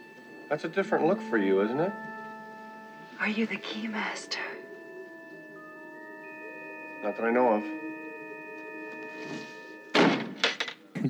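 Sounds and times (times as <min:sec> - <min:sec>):
steady low hum: 0:00.0 - 0:10.4
speech: 0:00.5 - 0:02.1, 0:03.2 - 0:04.6, 0:07.0 - 0:07.8
door slamming shut with a heavy thud: 0:09.2 - 0:10.8
door rattling as it settles: 0:10.0 - 0:10.9.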